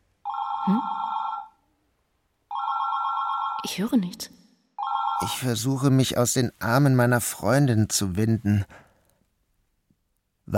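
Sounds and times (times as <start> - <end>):
telephone ringing with an electronic trill: 0.2 - 1.6, 2.5 - 3.7, 4.8 - 5.4
speech: 0.7 - 1.0, 3.6 - 4.4, 5.2 - 8.8.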